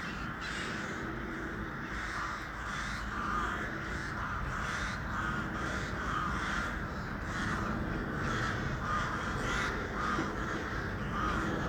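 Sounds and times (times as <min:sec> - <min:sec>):
crowd of crows cawing: 0:00.1 - 0:11.6.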